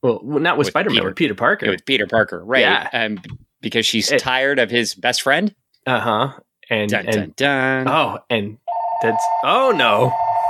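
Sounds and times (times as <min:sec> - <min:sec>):
vocal sounds: 0:00.0 - 0:04.6, 0:05.8 - 0:10.1
speech: 0:00.0 - 0:10.2
voice imitating a ringing telephone with a warbling tone: 0:07.9 - 0:10.4.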